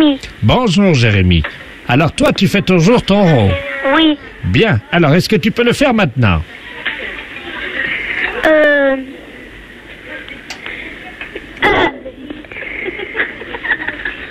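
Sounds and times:
steady noise: 0.0s - 14.2s
speech: 0.1s - 6.6s
boy burping over the telephone: 3.5s - 4.2s, 8.4s - 9.0s, 11.6s - 12.1s
laughter: 6.8s - 8.5s, 10.7s - 14.2s.

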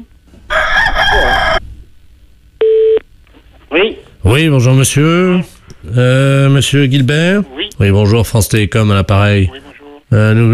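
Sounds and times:
rooster crowing over a telephone line: 0.5s - 1.6s
speech: 4.3s - 10.5s.

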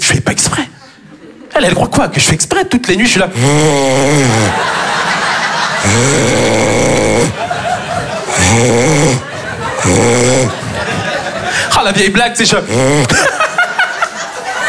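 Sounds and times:
speech: 0.1s - 1.0s, 1.6s - 5.0s, 5.8s - 6.9s, 8.5s - 9.2s, 11.8s - 13.4s
laughter: 0.8s - 1.8s, 4.0s - 14.6s
voice imitating loud snoring: 3.3s - 11.7s, 12.6s - 13.3s.

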